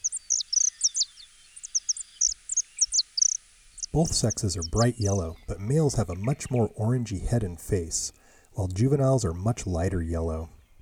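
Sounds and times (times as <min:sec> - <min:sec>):
saffron finch song of short high whistled chirps: 0:00.0 - 0:05.5
speech: 0:03.9 - 0:10.6.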